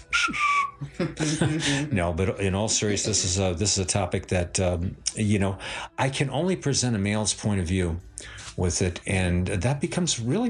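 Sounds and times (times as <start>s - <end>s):
person whistling one short clear downward-gliding note: 0.0s - 1.0s
laughter: 0.3s - 2.1s
speech: 1.0s - 10.4s
person making loud voiced vocal sounds: 1.1s - 2.0s.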